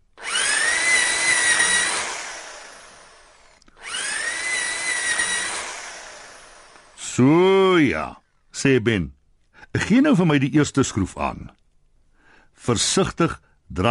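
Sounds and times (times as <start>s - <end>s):
power drill drilling holes into a hard wall for screws: 0.2s - 7.0s
speech: 7.2s - 9.2s, 9.8s - 11.6s, 12.6s - 13.9s.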